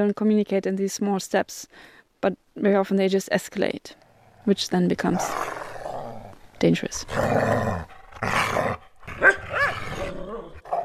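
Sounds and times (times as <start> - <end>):
speech: 0.0 - 5.6, 6.6 - 9.3
dog barking loudly: 9.2 - 10.2.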